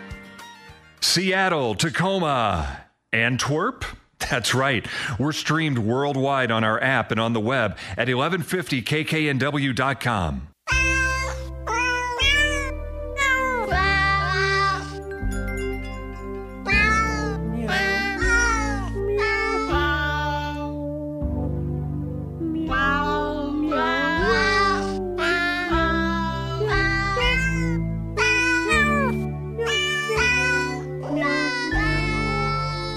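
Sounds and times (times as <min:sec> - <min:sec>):
speech: 0:01.0 - 0:10.8
cat meows pitched and edited into a festive Christmas melody: 0:10.7 - 0:15.0, 0:16.7 - 0:20.7, 0:22.6 - 0:32.9
steady bass accompaniment: 0:15.0 - 0:28.4.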